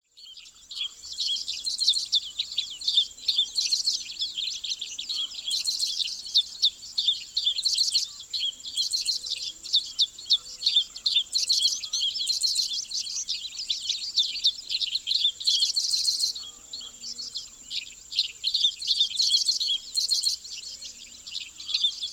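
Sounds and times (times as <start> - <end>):
dickcissel singing frenzy: 0.0 - 22.1.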